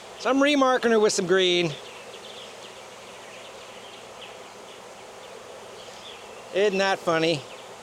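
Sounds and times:
swarm of honeybees buzzing: 0:00.0 - 0:07.8
speech: 0:00.2 - 0:01.9, 0:06.6 - 0:07.5
faint higher chirps: 0:01.6 - 0:07.8.

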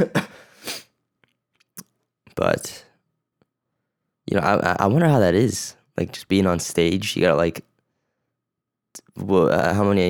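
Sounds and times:
person coughing: 0:00.0 - 0:00.8
speech: 0:02.4 - 0:02.8, 0:04.4 - 0:07.7, 0:09.2 - 0:10.0.

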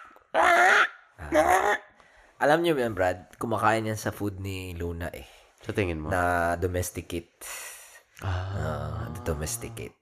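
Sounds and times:
person mimicking a bird call with nasal squawks: 0:00.4 - 0:01.8
speech: 0:01.3 - 0:09.9.

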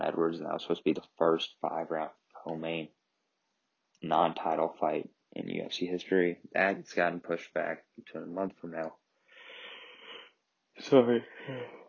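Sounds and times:
speech: 0:00.2 - 0:03.0, 0:04.0 - 0:09.0, 0:10.8 - 0:11.8
long breathy inhale: 0:09.2 - 0:10.3
drawn-out voiced yawn with a sagging pitch: 0:11.3 - 0:11.8.

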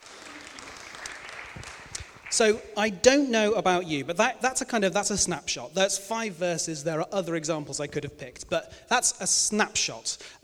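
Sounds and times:
audience applauding the readers after a Bible reading: 0:00.0 - 0:02.7
speech: 0:02.3 - 0:10.4.

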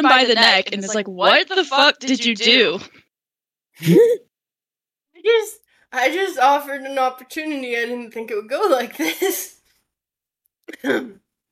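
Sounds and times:
speech: 0:00.0 - 0:03.0, 0:03.8 - 0:04.3, 0:05.2 - 0:09.6, 0:10.7 - 0:11.2
person imitating a raspy cough: 0:10.7 - 0:11.2.

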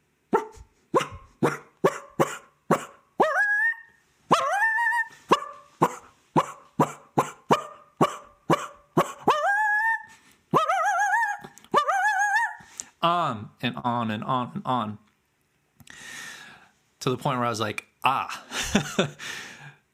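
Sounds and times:
coyotes barking sharply at a wolf: 0:00.3 - 0:12.6
coyotes' whining cries: 0:00.3 - 0:12.7
speech: 0:13.6 - 0:15.0, 0:17.0 - 0:19.4.

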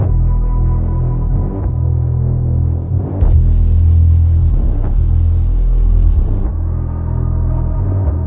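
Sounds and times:
heavy distorted sub-bass line in a slow melodic pattern: 0:01.1 - 0:08.2
burst of hissing white noise: 0:03.2 - 0:06.5.

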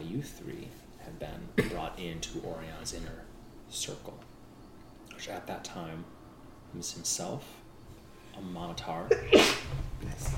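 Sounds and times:
speech: 0:00.2 - 0:04.4, 0:05.2 - 0:07.6, 0:08.4 - 0:10.3
person sneezing: 0:09.1 - 0:09.7.

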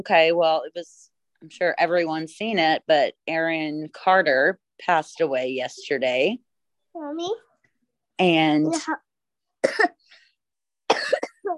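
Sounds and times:
speech: 0:00.0 - 0:07.5, 0:08.2 - 0:09.0, 0:09.6 - 0:10.0
little girl coughing: 0:09.6 - 0:10.0, 0:10.9 - 0:11.5.

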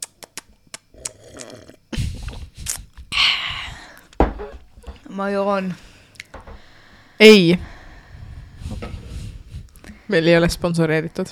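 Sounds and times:
slurping and swallowing: 0:00.2 - 0:03.0
person sipping a drink: 0:01.0 - 0:04.2
speech: 0:05.2 - 0:05.9, 0:07.2 - 0:07.7, 0:10.1 - 0:11.3
breathy exhale: 0:05.8 - 0:10.1.

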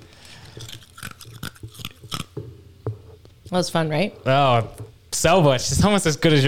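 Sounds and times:
wet crunchy chewing of food: 0:00.2 - 0:02.4
speech: 0:03.5 - 0:06.4.

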